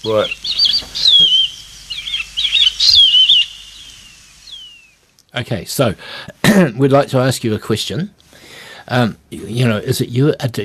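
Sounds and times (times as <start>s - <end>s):
speech: 0.0s - 0.6s, 5.4s - 8.2s, 8.9s - 10.6s
shining cuckoo calling in thin high whistles: 0.0s - 5.0s.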